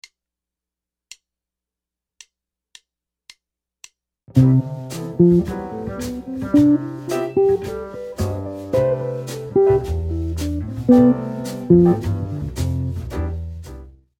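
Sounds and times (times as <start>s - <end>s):
guitar playing scale rhythms: 4.4s - 13.0s.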